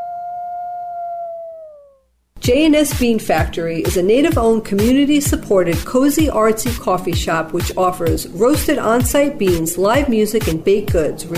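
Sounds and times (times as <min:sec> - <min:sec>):
wolf howling: 0:00.0 - 0:02.0
speech: 0:02.4 - 0:11.3.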